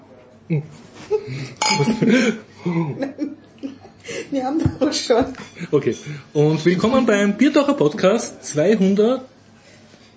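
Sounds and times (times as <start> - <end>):
speech: 0.5 - 9.3
laughter: 1.1 - 4.3
beer glasses clinking in a toast: 1.6 - 2.2.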